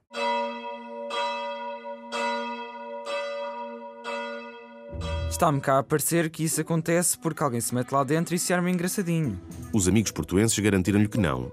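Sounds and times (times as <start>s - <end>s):
church bell tolling: 0.1s - 5.9s
speech: 5.3s - 11.5s.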